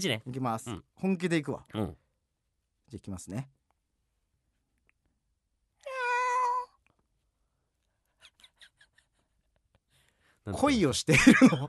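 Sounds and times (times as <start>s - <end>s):
speech: 0.0s - 2.0s, 2.9s - 3.6s, 10.4s - 11.6s
person imitating a cat's meow: 5.8s - 6.8s
laughter: 11.1s - 11.6s.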